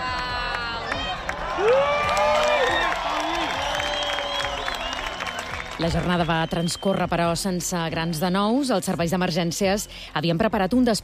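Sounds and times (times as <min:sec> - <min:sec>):
high whoops from eclipse watchers: 0:00.0 - 0:05.7
excited cheers from eclipse watchers: 0:00.0 - 0:06.5
outdoor crowd of eclipse watchers applauding: 0:00.0 - 0:07.1
speech: 0:05.8 - 0:11.0.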